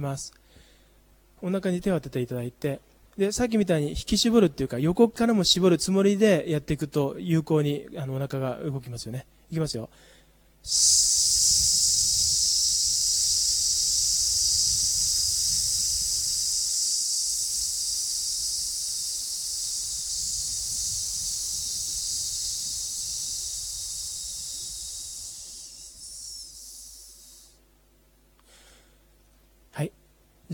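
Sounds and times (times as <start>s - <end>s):
speech: 0.0s - 0.4s, 1.4s - 11.6s, 29.8s - 30.5s
person exhaling a sustained sss hiss during an abdominal breathing exercise: 10.0s - 27.6s, 28.4s - 29.0s.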